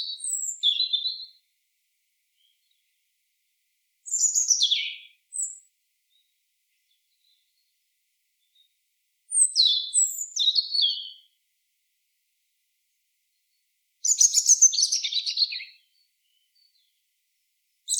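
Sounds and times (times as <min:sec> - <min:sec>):
European robin Erithacus rubecula singing: 0:00.0 - 0:01.4, 0:04.0 - 0:07.7, 0:09.3 - 0:11.4, 0:14.0 - 0:17.0.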